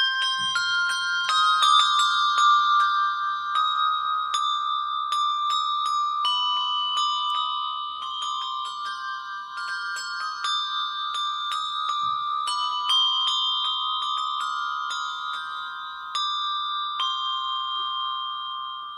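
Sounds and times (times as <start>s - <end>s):
handheld handbells struck with two mallets playing melody: 0.0s - 18.9s.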